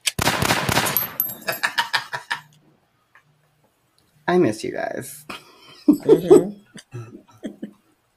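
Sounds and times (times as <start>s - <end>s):
gunshot sound effect, rapid gunfire with metallic ringing: 0.1s - 1.2s
speech: 4.3s - 5.4s, 6.0s - 7.2s.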